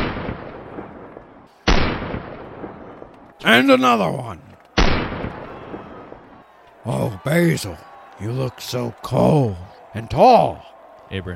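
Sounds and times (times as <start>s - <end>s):
meat and cheese cannon on a float firing a loud blast: 0.0s - 3.0s, 4.8s - 5.9s
speech: 3.4s - 4.5s, 6.8s - 11.3s.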